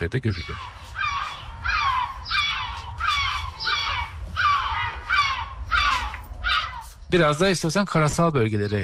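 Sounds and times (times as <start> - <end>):
speech: 0.0 - 0.8, 7.1 - 8.8
low rumble of noise: 0.0 - 8.8
yellow-legged gull calling with harsh descending squawks: 0.3 - 7.0.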